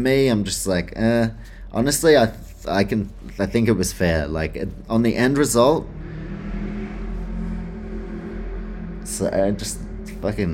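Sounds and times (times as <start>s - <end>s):
speech: 0.0s - 6.0s, 9.1s - 10.5s
car engine revving: 5.3s - 10.5s.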